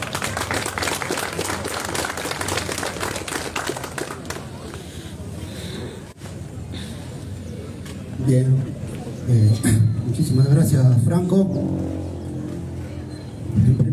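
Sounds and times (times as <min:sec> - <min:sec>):
audience applause: 0:00.0 - 0:04.8
low murmur of a large room: 0:00.0 - 0:13.9
speech: 0:08.2 - 0:08.7, 0:09.3 - 0:12.0.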